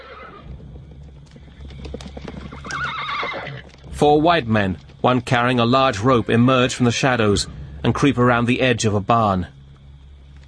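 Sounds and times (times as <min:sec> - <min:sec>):
spooked horse neighing shrilly at an isolated farmstead at night: 0:00.0 - 0:00.5, 0:02.4 - 0:03.7
spooked horses' hooves clopping at an isolated farmstead at night: 0:00.0 - 0:06.7
speech: 0:04.0 - 0:09.6.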